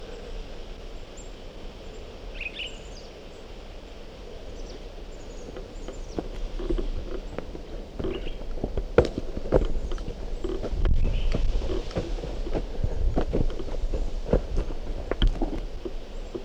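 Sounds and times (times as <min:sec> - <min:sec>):
pine grosbeak calling outdoors: 0:04.3 - 0:16.4
soft thumps: 0:05.5 - 0:16.4.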